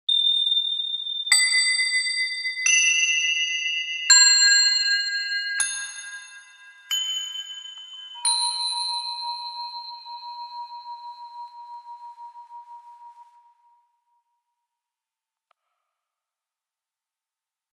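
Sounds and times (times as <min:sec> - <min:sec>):
Chinese bell tree notes: 0:00.1 - 0:14.4.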